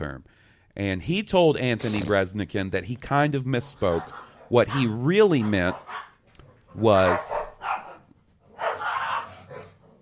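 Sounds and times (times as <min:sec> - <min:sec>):
speech: 0:00.0 - 0:06.0, 0:06.8 - 0:07.4
Boston terriers barking and yelping excitedly: 0:03.6 - 0:10.0.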